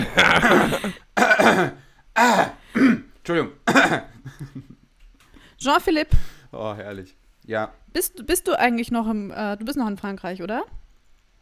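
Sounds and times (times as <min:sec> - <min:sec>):
speech: 0:00.0 - 0:01.0, 0:05.6 - 0:10.8
laughter: 0:00.0 - 0:01.1, 0:04.0 - 0:04.8
person clearing throat: 0:00.0 - 0:04.2.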